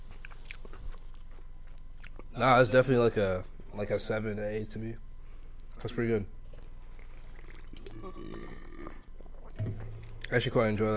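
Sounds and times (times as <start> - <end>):
speech: 2.4 - 5.0, 5.8 - 6.4, 10.3 - 10.9
long deep burp into the microphone: 7.7 - 9.7.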